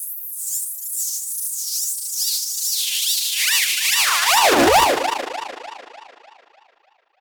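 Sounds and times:
filter-processed alarm siren: 4.0s - 6.6s.

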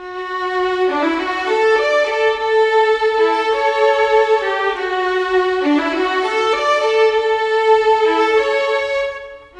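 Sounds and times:
violins: 0.0s - 9.5s.

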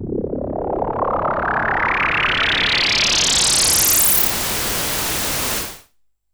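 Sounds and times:
filtered noise pulse: 0.8s - 5.8s
noise hiss crackle: 4.1s - 5.9s.

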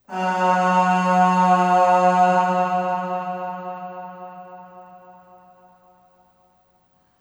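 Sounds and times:
short voice singing aah on F sharp with long reverb: 0.0s - 5.5s.

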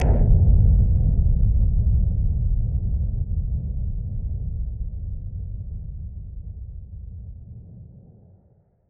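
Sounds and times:
filtered noise bomb boom: 0.0s - 8.6s.

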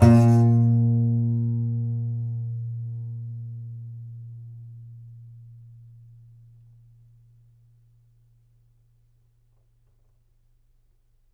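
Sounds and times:
contrabass balalaika plucked strings: 0.0s - 3.3s.

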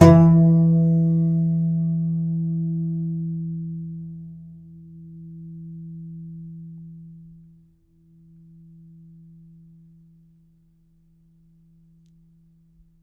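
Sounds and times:
contrabass balalaika plucked: 0.0s - 7.2s.

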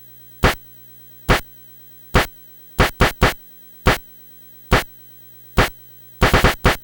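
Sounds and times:
Nintendo Entertainment System chiptune drum clap loop: 2.2s - 4.0s, 5.6s - 6.8s.

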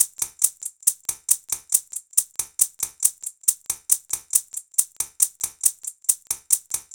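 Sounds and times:
shakers in abstract world fusion percussion: 0.0s - 6.9s.

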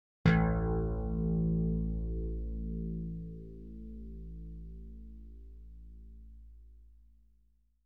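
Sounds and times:
KORG slap bass: 0.3s - 6.6s.

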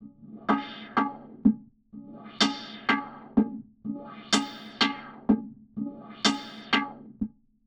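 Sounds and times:
percussion effects loop: 0.4s - 1.6s, 2.3s - 5.4s, 6.0s - 7.0s.

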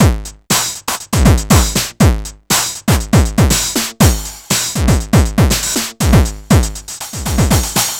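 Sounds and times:
distorted 909 drum machine: 0.0s - 7.9s.

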